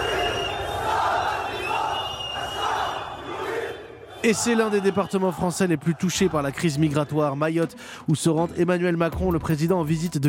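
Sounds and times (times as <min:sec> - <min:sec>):
many protest voices shouting together: 0:00.0 - 0:07.1
large protest crowd chanting: 0:00.0 - 0:07.2
speech: 0:04.2 - 0:10.2.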